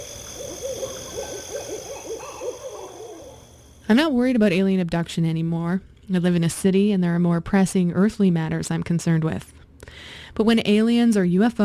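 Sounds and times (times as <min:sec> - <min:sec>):
owl hooting in dark woods: 0:00.0 - 0:03.8
steady high insect drone: 0:00.0 - 0:04.0
speech: 0:03.9 - 0:11.6.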